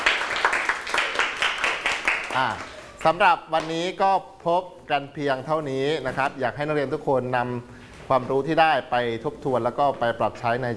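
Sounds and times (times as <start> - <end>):
students clapping in unison in a classroom: 0.0 - 3.7
speech: 2.4 - 10.7.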